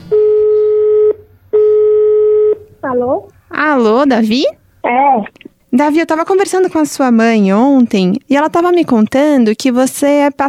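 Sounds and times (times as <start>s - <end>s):
telephone ringback tone as a call is placed: 0.1s - 2.6s
speech: 2.9s - 10.4s.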